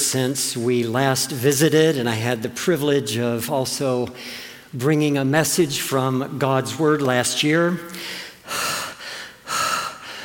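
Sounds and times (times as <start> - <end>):
speech: 0.1 - 8.6
heavy panting breaths: 7.9 - 10.2.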